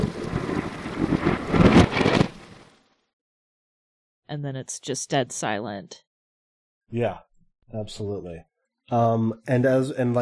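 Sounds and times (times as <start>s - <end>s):
thunder played in reverse: 0.0s - 2.8s
speech: 4.3s - 6.0s, 6.9s - 10.2s.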